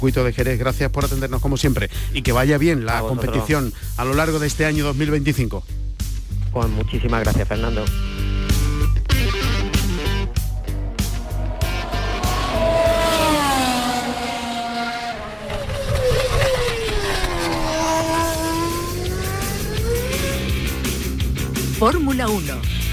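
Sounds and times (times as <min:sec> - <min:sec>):
speech: 0:00.0 - 0:05.9, 0:06.6 - 0:08.1, 0:21.8 - 0:22.8
Formula 1 car engines revving during practice at the Jerez racing circuit: 0:07.8 - 0:22.9.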